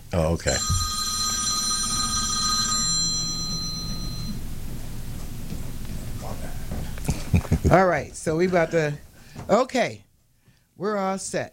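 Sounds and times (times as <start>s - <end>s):
speech: 0.1s - 0.9s, 7.6s - 10.0s, 10.8s - 11.5s
telephone ringing with a trilling bell tone: 0.5s - 4.5s.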